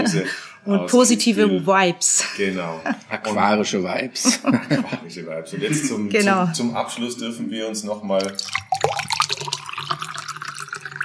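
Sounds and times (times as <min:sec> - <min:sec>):
laughter: 0:00.0 - 0:00.5, 0:04.2 - 0:06.2
speech: 0:00.0 - 0:09.4
water pouring into a glass for a toast: 0:08.1 - 0:11.0.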